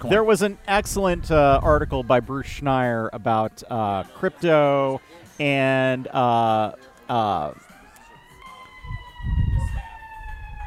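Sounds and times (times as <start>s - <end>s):
speech: 0.0s - 7.6s
passing ambulance siren wailing: 4.6s - 10.6s.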